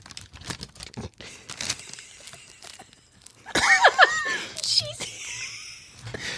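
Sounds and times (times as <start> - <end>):
crackly crinkling of packaging: 0.0 - 4.0
laughter: 2.0 - 6.3.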